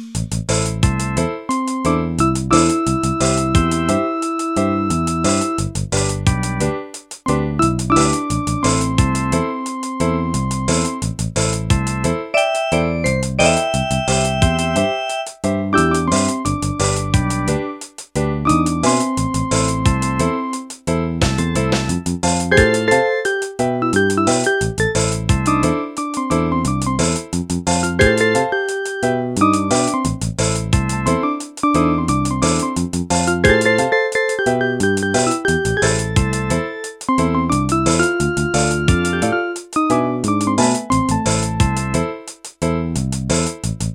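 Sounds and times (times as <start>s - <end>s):
Yamaha PSR-300 keyboard reggae style: 0.2s - 43.9s.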